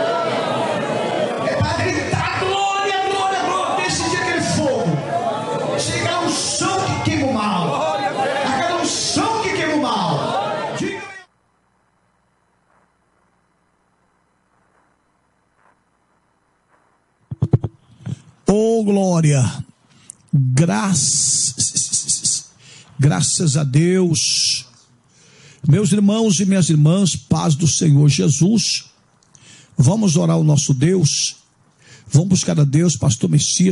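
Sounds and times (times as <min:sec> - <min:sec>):
crowd of many voices shouting and crying out in worship: 0:00.0 - 0:11.3
speech: 0:01.6 - 0:02.2, 0:18.9 - 0:19.6, 0:20.4 - 0:22.4, 0:23.0 - 0:24.7, 0:25.6 - 0:28.9, 0:29.8 - 0:31.4, 0:32.1 - 0:33.7.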